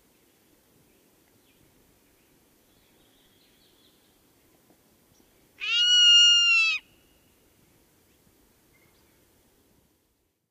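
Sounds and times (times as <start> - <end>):
zone-tailed hawk screaming: 5.6 - 6.8.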